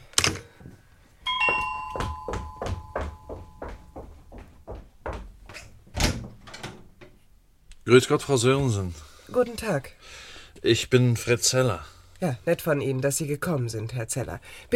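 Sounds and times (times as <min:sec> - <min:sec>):
doorbell chiming at a home: 0:01.2 - 0:04.0
soft regular thuds: 0:01.5 - 0:07.2
speech: 0:07.9 - 0:14.7.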